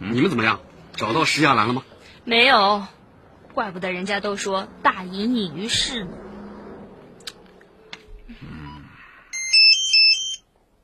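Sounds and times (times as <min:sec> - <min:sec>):
speech: 0:00.1 - 0:03.0, 0:03.6 - 0:06.2
mobile phone ringing with a bright high electronic melody: 0:09.3 - 0:10.5.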